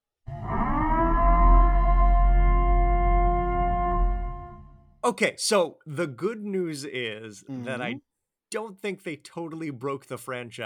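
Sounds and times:
civil defense siren wailing: 0.3s - 4.2s
speech: 5.1s - 10.6s.

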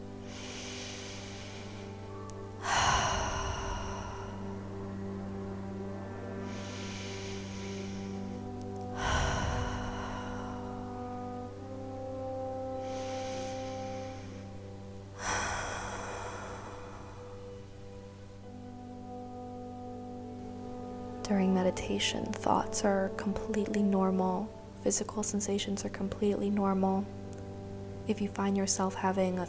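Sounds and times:
deep cleansing breaths during a guided meditation: 0.0s - 19.3s
steady low sustained musical drone: 0.0s - 29.4s
speech: 21.3s - 27.2s, 28.1s - 29.4s.

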